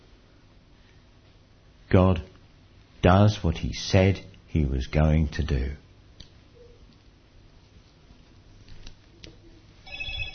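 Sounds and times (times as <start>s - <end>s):
dull noisy hum: 0.0s - 10.3s
speech: 1.9s - 2.3s, 3.0s - 5.8s
telephone ringing with a bright warbling trill: 9.8s - 10.3s.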